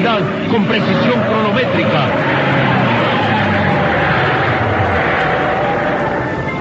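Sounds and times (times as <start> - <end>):
road noise: 0.0 - 6.5
small sports car engine roaring while swerving and braking: 0.0 - 6.5
speech: 0.2 - 2.3.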